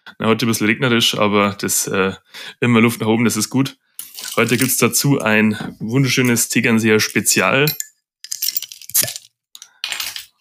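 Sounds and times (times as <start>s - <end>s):
speech: 0.1s - 3.8s, 4.4s - 7.9s
beer glasses clinking in a toast: 7.0s - 10.3s.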